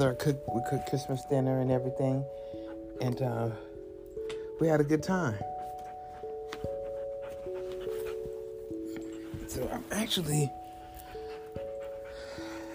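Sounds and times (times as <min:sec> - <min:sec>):
speech: 0:00.0 - 0:03.7, 0:04.6 - 0:05.6, 0:10.0 - 0:10.6
dog upset by fireworks panting and whimpering: 0:05.4 - 0:12.7.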